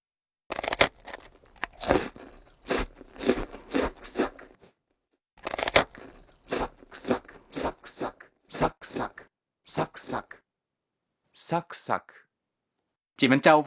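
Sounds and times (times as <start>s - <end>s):
crunchy biting into hard brittle crisp food: 0.5s - 4.7s, 5.4s - 9.2s
rhythmic chomping: 1.6s - 4.6s, 5.4s - 9.2s
speech: 11.5s - 12.2s, 13.2s - 13.6s.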